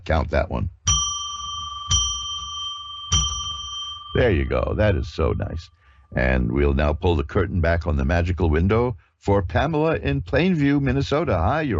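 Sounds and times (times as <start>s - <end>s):
speech: 0.0s - 0.8s, 4.2s - 11.7s
small bell struck and chiming: 0.9s - 4.7s.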